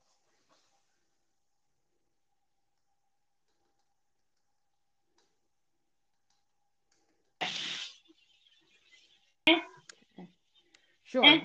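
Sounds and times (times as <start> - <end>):
food sizzling in a hot pan: 7.4 - 8.0
speech: 11.1 - 11.4.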